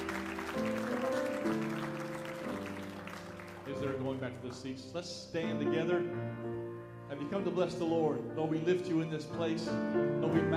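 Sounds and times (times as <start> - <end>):
audience applause: 0.0 - 4.6
sustained keyboard chords: 0.0 - 10.5
speech: 3.8 - 6.4, 7.1 - 10.5.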